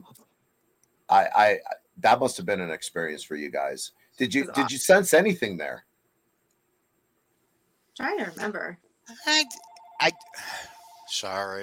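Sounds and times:
speech: 1.1s - 5.9s, 8.0s - 11.6s
landline phone ringing: 9.5s - 11.3s.

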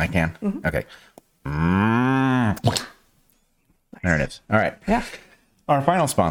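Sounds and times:
speech: 0.1s - 2.9s, 4.0s - 6.3s
person imitating a cow moo: 1.4s - 2.8s.

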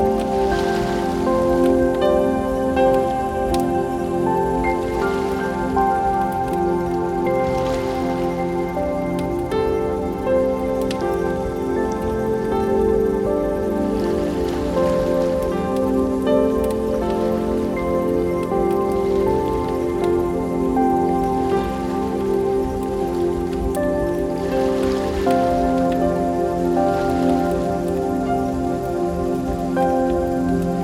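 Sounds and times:
bonfire crackling: 0.0s - 30.8s
ocean waves: 0.0s - 30.8s
soft sustained relaxing music: 0.0s - 30.8s.

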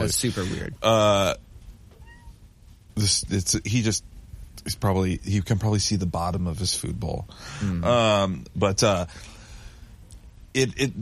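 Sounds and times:
speech: 0.0s - 1.4s, 3.0s - 9.4s, 10.6s - 10.9s
cat meowing: 1.9s - 2.4s.

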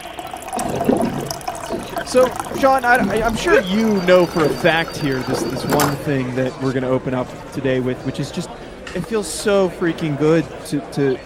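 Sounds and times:
water pouring from a water cooler into a cup: 0.0s - 6.2s
speech: 2.1s - 11.2s.

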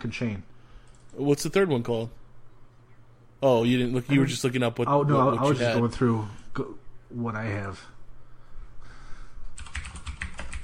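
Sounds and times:
speech: 0.0s - 0.5s, 1.1s - 2.2s, 3.4s - 8.0s
faint room noise: 0.0s - 10.6s
keystrokes clacking on a mechanical keyboard: 9.6s - 10.6s.

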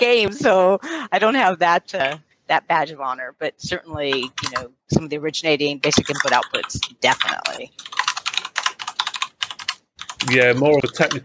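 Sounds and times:
speech: 0.0s - 8.0s, 10.2s - 11.2s
heavy typing on a computer keyboard: 4.1s - 4.7s, 5.8s - 11.2s.

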